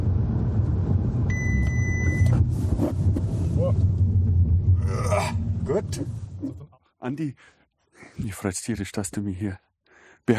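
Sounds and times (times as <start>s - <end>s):
car engine and road rumble during emergency stop assistant test: 0.0s - 6.7s
speech: 5.8s - 6.2s, 7.0s - 10.3s.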